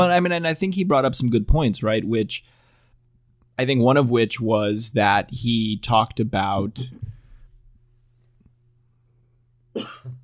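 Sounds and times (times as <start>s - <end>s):
speech: 0.0s - 2.6s, 3.6s - 7.1s, 9.8s - 10.2s
person coughing: 6.6s - 7.2s, 9.8s - 10.2s.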